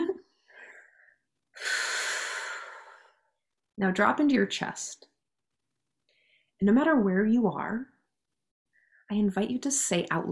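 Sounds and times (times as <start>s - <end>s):
deep breath in: 0.4s - 3.3s
speech: 3.8s - 5.1s, 6.6s - 7.9s, 9.1s - 10.3s.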